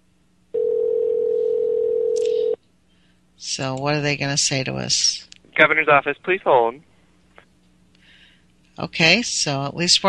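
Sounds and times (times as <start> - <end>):
loud steady telephone dial tone: 0.6 - 2.6
speech: 3.6 - 6.9, 8.8 - 10.0.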